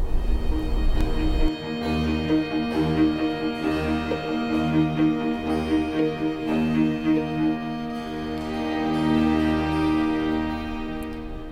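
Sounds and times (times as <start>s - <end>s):
pulsing low bass: 0.0s - 7.6s
sustained string harmonies: 0.0s - 11.4s
violins plucked imitating rain: 0.4s - 11.4s.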